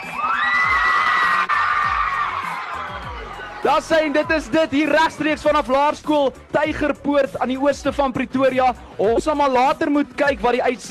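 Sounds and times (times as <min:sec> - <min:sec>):
primary school children cheering and shrieking: 0:00.0 - 0:04.2
school crowd clapping: 0:00.0 - 0:05.0
speech: 0:03.7 - 0:10.8.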